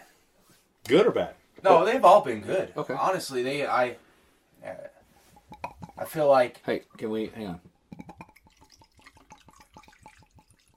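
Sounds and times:
speech: 0.9 - 4.0, 4.6 - 4.9, 6.0 - 7.7
whiskey glugging from a bottle into a glass: 5.2 - 6.2, 7.6 - 10.7.

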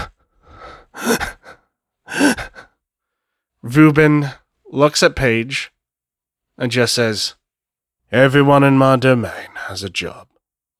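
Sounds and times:
voice imitating heavy unsteady breathing of a wounded man: 0.0 - 2.7
speech: 3.7 - 5.7, 6.6 - 7.4, 8.1 - 10.3.

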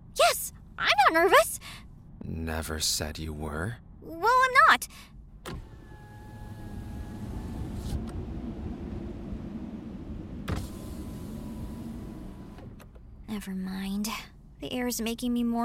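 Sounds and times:
low rumble of the car running: 0.0 - 13.6
speech: 0.8 - 1.6, 2.5 - 5.1, 13.3 - 15.6
car power window motor whirring as it rolls down: 5.4 - 13.1.

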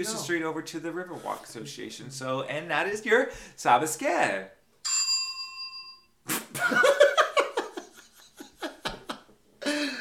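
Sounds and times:
speech: 0.0 - 4.6
desk bell ding: 4.8 - 6.1
ringing tone: 4.8 - 6.1
people laughing: 6.6 - 9.3.

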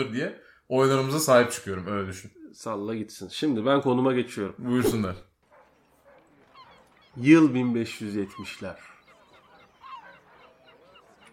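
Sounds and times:
speech: 0.0 - 5.3, 7.2 - 8.9
seagulls squawking: 5.4 - 11.3.

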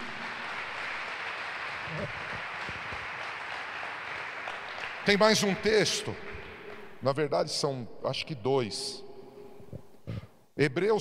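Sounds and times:
church audience applauding: 0.0 - 7.0
speech: 1.9 - 2.4, 5.0 - 6.3, 7.0 - 9.0, 10.6 - 10.9.

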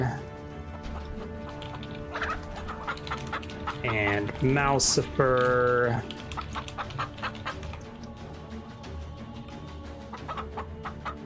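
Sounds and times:
flock of chickens clucking: 0.5 - 8.5, 9.4 - 11.2
chickens squawking: 0.6 - 4.8, 6.0 - 8.5, 10.0 - 11.2
speech: 3.8 - 6.2.

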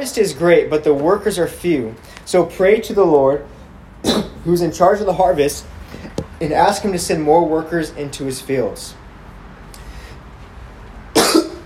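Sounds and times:
speech: 0.0 - 9.0
harsh lingering cough after COVID: 4.0 - 4.4, 11.1 - 11.6.

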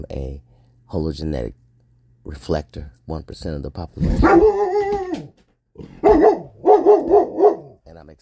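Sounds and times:
speech: 0.0 - 1.6, 2.2 - 6.3, 8.0 - 8.2
dog barking and yelping: 4.1 - 7.8.

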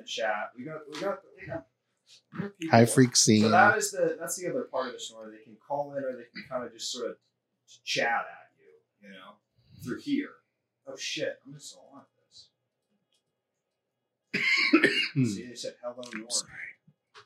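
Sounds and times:
speech: 0.0 - 8.4, 9.0 - 12.5, 14.3 - 17.2
voice sounds: 2.4 - 3.9, 14.8 - 16.7
person clearing throat: 14.4 - 15.5
person coughing: 14.4 - 15.5.

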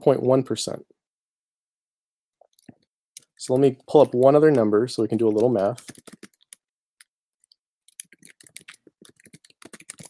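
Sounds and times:
speech: 0.0 - 1.0, 3.4 - 6.3
typing on a computer keyboard: 3.2 - 6.6, 7.9 - 10.0.

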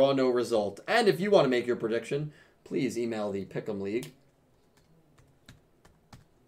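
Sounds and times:
speech: 0.0 - 4.2
typing on a computer keyboard: 4.6 - 6.4.

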